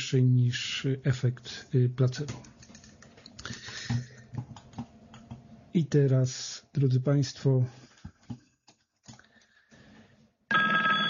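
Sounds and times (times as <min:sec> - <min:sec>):
speech: 0:00.1 - 0:02.6, 0:05.8 - 0:08.4
telephone ringing with a bright electronic tone: 0:10.5 - 0:11.0.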